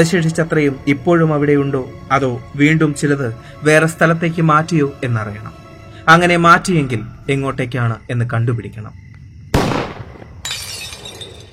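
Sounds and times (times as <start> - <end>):
speech: 0.0 - 9.0
pistol gunshot: 9.6 - 10.3
window glass shattering: 10.4 - 11.5.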